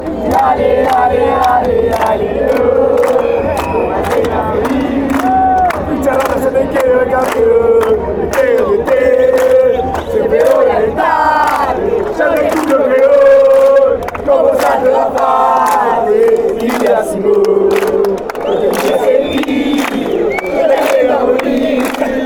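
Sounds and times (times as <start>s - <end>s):
crowd chanting in Argentina: 0.0s - 22.2s.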